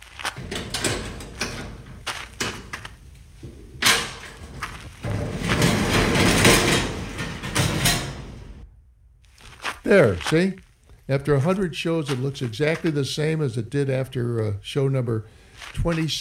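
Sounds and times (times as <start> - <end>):
storage unit door clunks and thuds: 0.0 - 8.6
speech: 9.9 - 16.1.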